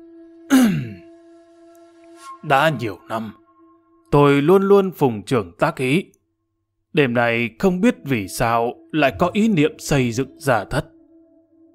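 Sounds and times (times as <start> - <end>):
man clearing his throat: 0.5 - 1.1
speech: 2.4 - 3.4, 4.1 - 6.2, 6.9 - 10.9.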